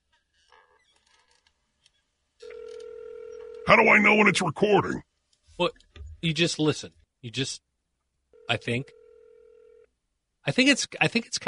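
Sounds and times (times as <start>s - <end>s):
telephone ringing tone over speakerphone after dialing: 2.4s - 4.4s, 8.3s - 9.9s
speech: 3.7s - 7.6s, 8.5s - 9.0s, 10.4s - 11.4s.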